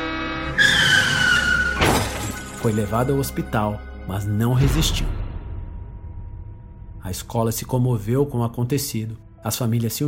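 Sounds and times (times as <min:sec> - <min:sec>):
bus tires screeching in a skid: 0:00.0 - 0:02.4
bus crash: 0:01.4 - 0:02.9
glass shattering: 0:01.7 - 0:03.2
speech: 0:02.6 - 0:05.2, 0:07.1 - 0:10.0.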